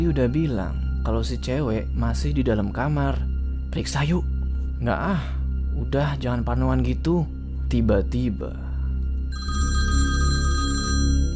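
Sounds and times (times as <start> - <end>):
speech: 0.0 - 8.6
reception desk telephone ringing with electronic bell: 9.3 - 11.3.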